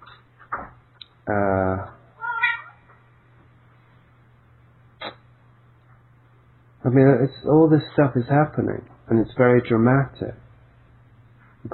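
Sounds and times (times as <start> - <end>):
steady low hum: 0.0 - 11.7
speech: 1.3 - 2.0, 6.9 - 10.4
pet cat meowing: 2.2 - 2.8.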